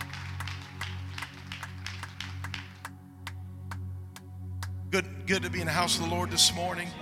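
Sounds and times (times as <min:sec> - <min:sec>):
crowd clapping in unison: 0:00.0 - 0:04.9
sustained low musical drone: 0:00.0 - 0:07.0
speech: 0:04.9 - 0:07.0.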